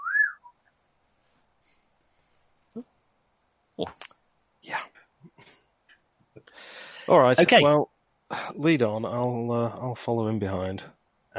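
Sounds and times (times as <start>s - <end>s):
person whistling: 0.0s - 0.5s
speech: 3.8s - 4.0s, 7.1s - 7.9s, 8.6s - 11.3s.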